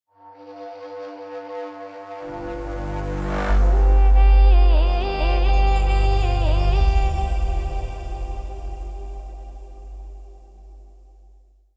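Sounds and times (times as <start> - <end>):
ethnic music logo: 2.4 - 10.9.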